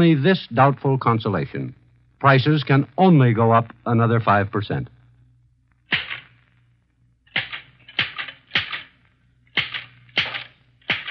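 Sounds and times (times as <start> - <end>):
speech: 0.0 - 4.9
slow typewriter keystrokes typed by a mother holding a pencil between her teeth: 7.3 - 8.9, 9.5 - 11.0.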